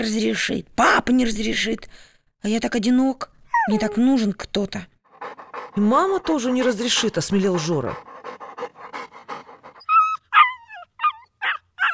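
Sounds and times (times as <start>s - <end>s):
speech: 0.0s - 8.8s
dog whining: 3.5s - 4.2s, 5.1s - 11.9s
dog panting: 5.1s - 10.2s.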